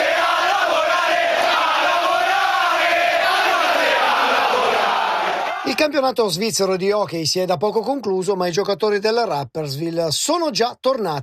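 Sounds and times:
large crowd of hockey fans chanting a protest chant: 0:00.0 - 0:05.7
speech: 0:05.8 - 0:11.2.

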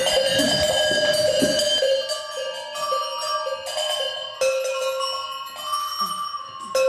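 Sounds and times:
several bells ringing in an enclosed bell room: 0:00.0 - 0:06.8.

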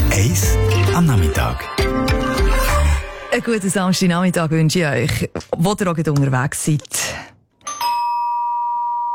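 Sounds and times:
speech: 0:00.1 - 0:02.2, 0:03.3 - 0:07.3
home doorbell chime: 0:07.6 - 0:09.1.

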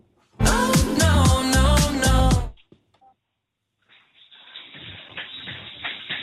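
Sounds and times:
pop duet song with a steady beat: 0:00.4 - 0:02.6.

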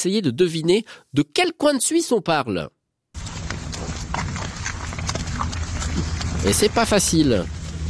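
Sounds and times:
speech: 0:00.0 - 0:02.8, 0:06.4 - 0:07.6
heavy ox hooves clopping on a hard surface: 0:03.2 - 0:07.8
low rumbling background: 0:03.2 - 0:07.8.

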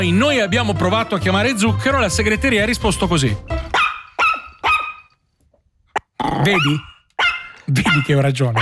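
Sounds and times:
speech: 0:00.0 - 0:03.6, 0:06.3 - 0:06.9, 0:07.7 - 0:08.6
small dog yapping on a phone voicemail greeting: 0:03.7 - 0:05.2, 0:06.0 - 0:08.6
small dog warbling growl-like vocalization: 0:06.0 - 0:08.6.

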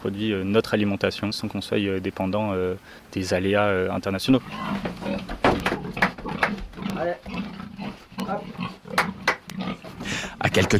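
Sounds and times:
speech: 0:00.0 - 0:05.3, 0:10.5 - 0:10.7
pigs grunting and snorting on a farm in Pozieux: 0:04.2 - 0:10.7.

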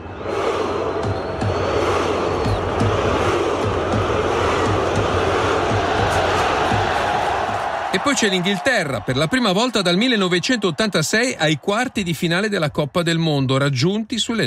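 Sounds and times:
rhythmic group shouts or thumps of a massed football chant: 0:00.0 - 0:08.2
large stadium crowd of football fans roaring: 0:00.0 - 0:13.8
speech: 0:08.0 - 0:14.4.

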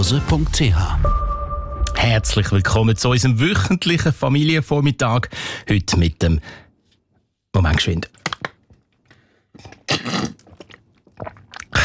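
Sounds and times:
speech: 0:00.0 - 0:01.2, 0:02.0 - 0:06.6, 0:07.6 - 0:08.2
person sipping and gulping a drink on a hot day: 0:08.3 - 0:11.8.

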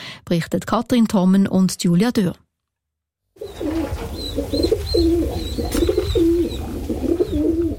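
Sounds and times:
speech: 0:00.3 - 0:02.4, 0:04.5 - 0:06.0
several pigeons cooing: 0:03.4 - 0:07.7
steady low rumble of city background: 0:03.4 - 0:07.7.

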